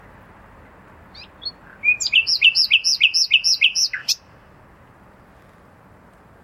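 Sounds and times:
common nightingale song phrase: 0:01.0 - 0:04.6.

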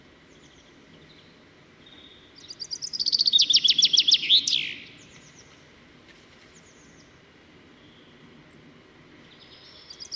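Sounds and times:
common chaffinch Fringilla coelebs singing: 0:00.2 - 0:05.5, 0:09.2 - 0:10.1.

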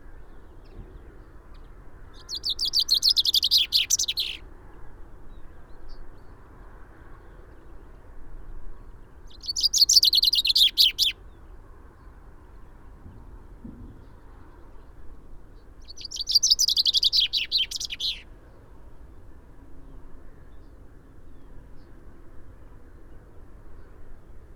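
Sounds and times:
common chaffinch Fringilla coelebs singing: 0:02.2 - 0:04.4, 0:09.3 - 0:11.2, 0:15.8 - 0:18.2.

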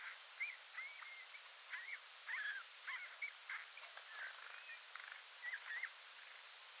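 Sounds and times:
Eurasian bullfinch Pyrrhula pyrrhula uttering gentle piping whistles: 0:00.0 - 0:04.8, 0:05.4 - 0:05.9
faint hiss: 0:00.0 - 0:06.7.

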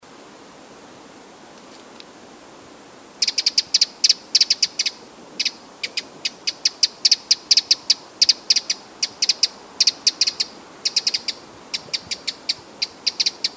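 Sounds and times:
quiet hiss: 0:00.0 - 0:13.5
Eurasian wren Troglodytes troglodytes ticking calls: 0:03.2 - 0:13.5.

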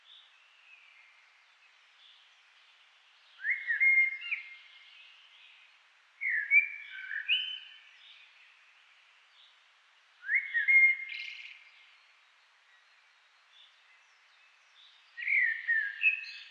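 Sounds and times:
common blackbird singing warbled whistles: 0:03.3 - 0:05.6, 0:06.2 - 0:08.2, 0:10.2 - 0:11.9, 0:13.6 - 0:16.5.

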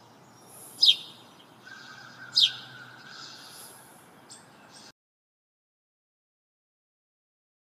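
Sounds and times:
house sparrow Passer domesticus chirps: 0:00.0 - 0:04.9
quiet hiss: 0:00.0 - 0:04.9.

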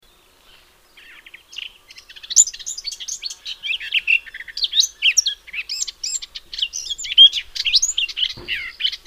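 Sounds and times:
Eurasian blackcap Sylvia atricapilla singing: 0:01.0 - 0:09.0
low thump: 0:08.3 - 0:08.7.

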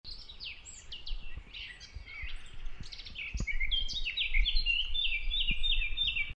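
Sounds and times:
Eurasian blackcap Sylvia atricapilla song with warbling and whistled notes: 0:00.1 - 0:06.3.

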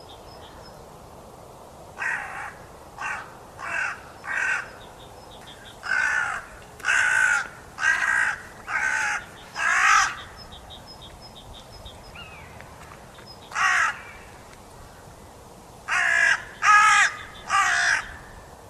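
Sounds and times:
carrion crow Corvus corone giving harsh broad caws: 0:02.0 - 0:04.8, 0:05.8 - 0:10.4, 0:13.5 - 0:14.3, 0:15.9 - 0:18.3.

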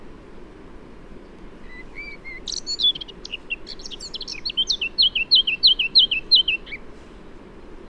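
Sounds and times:
Eurasian blackcap Sylvia atricapilla singing: 0:01.6 - 0:06.9.

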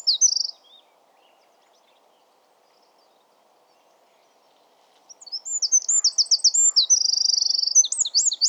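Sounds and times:
Eurasian wren Troglodytes troglodytes singing high-pitched trills with buzzing rattle: 0:00.0 - 0:00.8, 0:05.1 - 0:08.4.

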